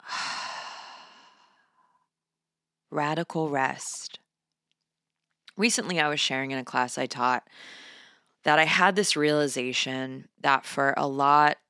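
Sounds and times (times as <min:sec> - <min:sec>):
long breath during a guided breathing exercise: 0:00.0 - 0:02.0, 0:07.5 - 0:08.3
speech: 0:02.9 - 0:04.2, 0:05.6 - 0:11.6.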